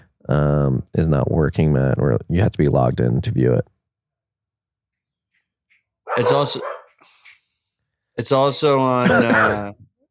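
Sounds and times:
speech: 0.3 - 3.7, 6.2 - 6.8, 8.2 - 9.9
dogs barking excitedly in greeting: 6.0 - 7.0.

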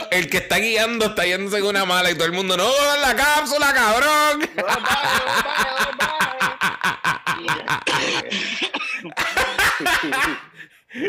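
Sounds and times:
speech: 0.1 - 6.5
woman coughing: 7.5 - 10.5
woman laughing breathily: 7.5 - 11.0.

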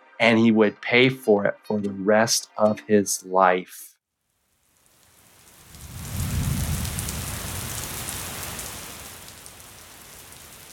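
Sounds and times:
speech: 0.2 - 3.9
heavy rain falling: 4.9 - 10.7.

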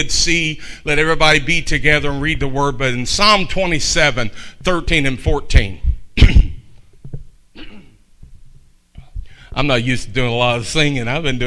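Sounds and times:
speech: 0.0 - 6.4, 9.6 - 11.4
man clearing his throat: 6.2 - 6.8, 7.6 - 8.0.

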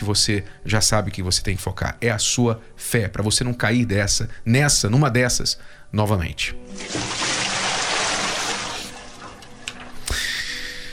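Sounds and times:
speech: 0.0 - 7.2
water pouring and rushing: 6.7 - 10.1.

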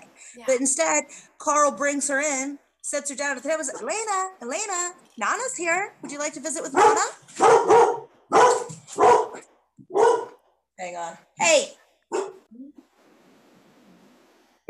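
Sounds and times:
speech: 0.4 - 7.8, 10.8 - 12.2
dog barking and whimpering: 6.8 - 10.4, 12.1 - 12.5.

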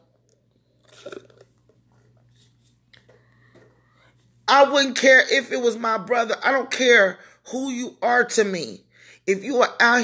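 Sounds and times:
faint steady hum: 0.0 - 10.0
person sipping water: 0.2 - 4.4
person swallowing: 0.8 - 1.6
speech: 4.5 - 10.0.

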